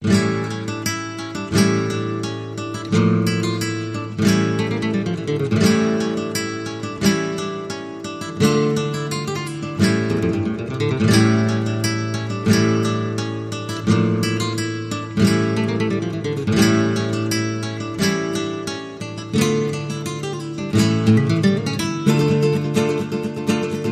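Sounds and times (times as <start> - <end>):
Spanish flamenco guitar: 0.0 - 23.9.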